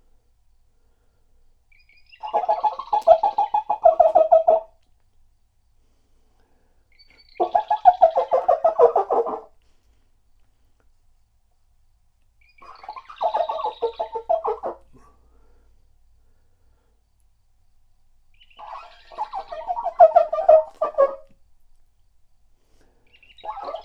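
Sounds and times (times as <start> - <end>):
bird rattling gobbling calls: 1.9 - 4.7, 7.0 - 9.5, 12.5 - 14.9, 18.4 - 21.3, 23.1 - 23.8.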